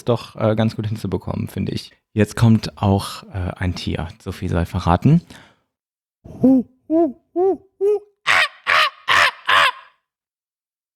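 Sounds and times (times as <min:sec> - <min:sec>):
speech: 0:00.0 - 0:05.5, 0:06.2 - 0:08.1
human voice imitating monkey hoots and shrieks: 0:06.3 - 0:10.0.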